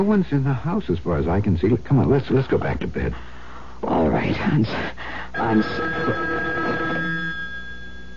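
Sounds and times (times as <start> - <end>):
speech: 0.0 - 6.5
telephone bell ringing with an electric trill: 5.4 - 8.1.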